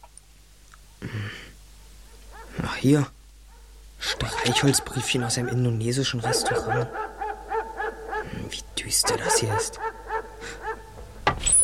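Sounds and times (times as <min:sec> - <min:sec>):
dog giving whining yelps: 0:02.1 - 0:02.6, 0:03.5 - 0:08.4, 0:09.0 - 0:11.0
speech: 0:02.8 - 0:03.2, 0:04.1 - 0:07.2, 0:08.4 - 0:10.6.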